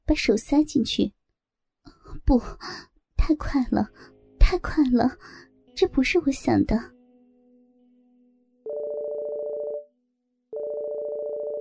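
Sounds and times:
speech: 0.1s - 1.2s, 2.2s - 6.9s
mobile phone electronic ring: 8.7s - 9.9s, 10.5s - 11.5s.

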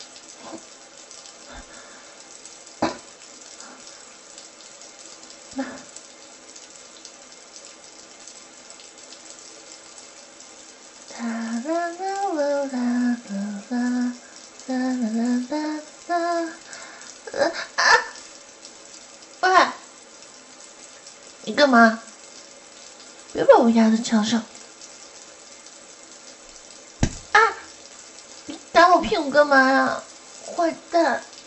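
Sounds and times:
water running for a bath: 0.0s - 31.4s
speech: 21.6s - 22.0s, 23.6s - 24.5s, 29.4s - 30.0s
sharp knocks: 27.0s - 27.4s
person making drawn-out vocal sounds: 27.0s - 27.7s.

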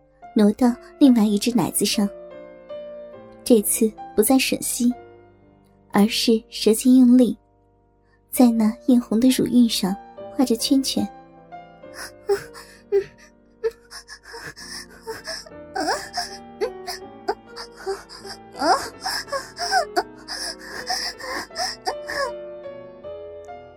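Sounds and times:
speech: 0.4s - 2.2s, 3.5s - 5.0s, 6.0s - 7.4s, 8.3s - 11.2s, 12.0s - 13.1s
woman panting and moaning: 12.0s - 22.3s.

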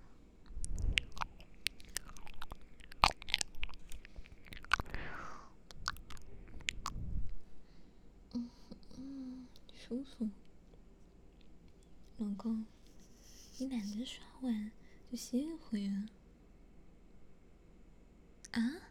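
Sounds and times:
chewing and eating a homemade breakfast: 0.4s - 7.0s
wet mouth sounds: 0.5s - 7.1s
speech: 9.9s - 10.5s, 12.2s - 12.8s, 13.6s - 16.2s, 18.6s - 18.8s.

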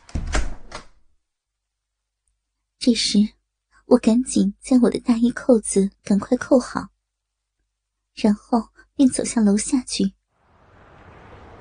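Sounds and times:
door pushed shut: 0.0s - 1.0s
speech: 2.8s - 6.9s, 8.2s - 10.2s.

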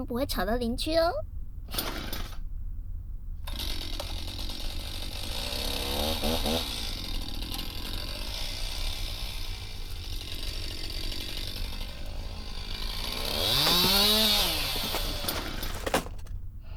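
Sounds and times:
speech: 0.0s - 2.0s
chainsaw running and revving: 1.7s - 2.4s, 3.5s - 16.3s.

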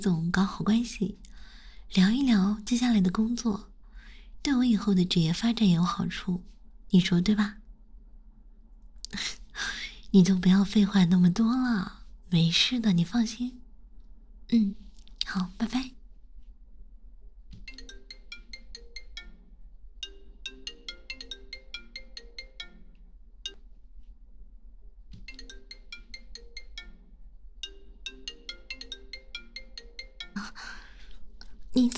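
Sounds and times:
speech: 0.0s - 1.3s, 1.9s - 3.7s, 4.4s - 7.6s, 9.1s - 13.6s, 14.5s - 16.0s
mobile phone ringtone with a bright repeating electronic melody: 17.7s - 19.4s, 20.0s - 23.6s, 25.3s - 30.7s.

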